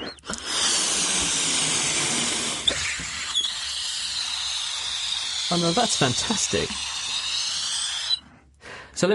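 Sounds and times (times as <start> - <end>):
air hissing out of a deflating balloon on a CD hovercraft: 0.0 - 8.4
speech: 5.5 - 6.9, 9.0 - 9.1.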